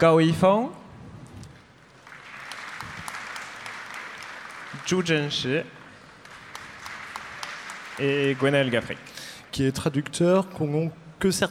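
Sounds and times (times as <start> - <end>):
speech: 0.0 - 0.8, 4.8 - 5.8, 8.0 - 11.4
audience applause at a book event: 2.0 - 9.5.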